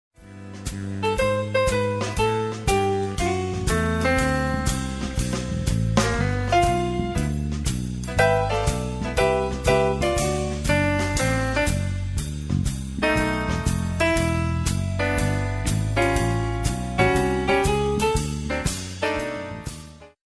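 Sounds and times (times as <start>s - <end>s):
jazz lounge music: 0.2s - 20.2s.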